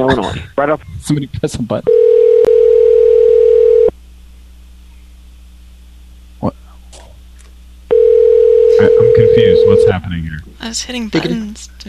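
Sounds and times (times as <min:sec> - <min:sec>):
speech: 0:00.0 - 0:02.3, 0:10.0 - 0:11.8
telephone ringback tone on a call to a car dealership: 0:01.9 - 0:03.9, 0:07.9 - 0:10.0.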